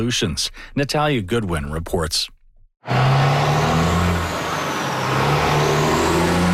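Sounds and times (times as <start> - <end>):
speech: 0.0 - 3.2
heavy trucks rumbling past: 2.8 - 6.5.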